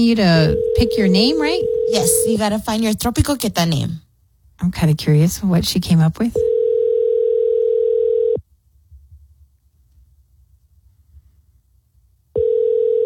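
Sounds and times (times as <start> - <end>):
speech: 0.0 - 4.0, 4.6 - 6.5
outgoing phone call ringing tone: 0.4 - 2.4, 6.4 - 8.4, 12.4 - 13.0.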